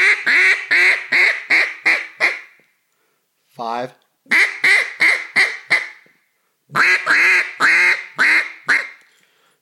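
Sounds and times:
greeting quacks blown on a duck call: 0.0s - 2.6s, 4.3s - 6.0s, 6.7s - 9.0s
speech: 3.6s - 4.4s.

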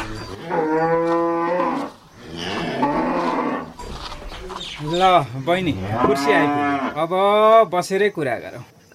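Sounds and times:
cows mooing on a large cattle farm beside the cowshed: 0.0s - 4.3s, 5.6s - 7.0s
speech: 4.8s - 8.9s.

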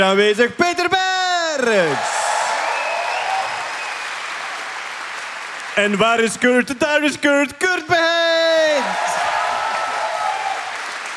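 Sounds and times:
speech: 0.0s - 1.0s, 1.6s - 2.1s, 5.8s - 9.1s
audience applause: 1.8s - 6.4s, 8.6s - 11.1s.

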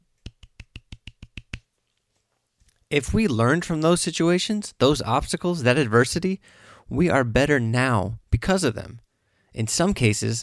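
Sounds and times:
quiet golf clap of soft hand claps: 0.2s - 1.7s
speech: 2.9s - 10.4s.

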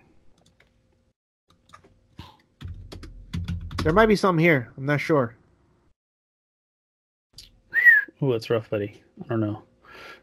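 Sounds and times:
faint typing on a computer keyboard: 2.6s - 4.1s
speech: 3.8s - 5.4s, 8.2s - 9.7s.

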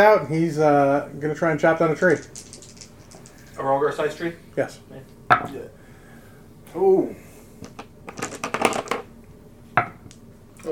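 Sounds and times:
speech: 0.0s - 2.5s, 3.6s - 5.8s, 6.7s - 7.8s
dice clattering across a hard tabletop during a tabletop game: 2.0s - 3.6s, 7.6s - 9.1s.

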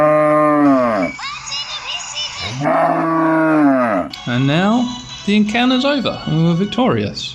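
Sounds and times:
cow mooing in a field: 0.0s - 1.2s, 2.5s - 4.2s
speech: 4.4s - 7.3s.

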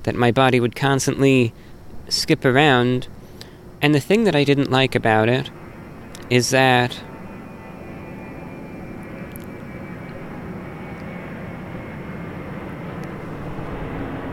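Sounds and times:
speech: 0.0s - 3.2s, 3.8s - 5.6s, 6.3s - 7.1s
jet airplane flying overhead: 1.0s - 14.3s.

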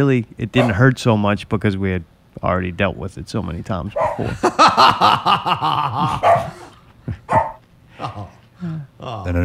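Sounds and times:
speech: 0.0s - 7.3s, 8.0s - 9.4s
dog barking: 0.6s - 0.8s, 4.0s - 4.3s, 6.1s - 6.7s, 7.3s - 7.6s
laughter: 4.2s - 6.4s.

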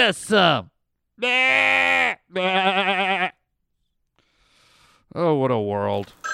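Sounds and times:
speech: 0.0s - 3.3s, 5.2s - 6.2s
goat bleating: 1.2s - 3.4s.

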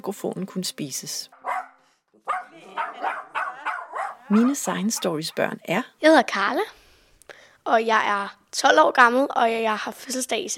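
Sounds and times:
speech: 0.0s - 1.4s, 4.3s - 6.8s, 7.6s - 10.5s
dog barking: 1.4s - 5.6s.

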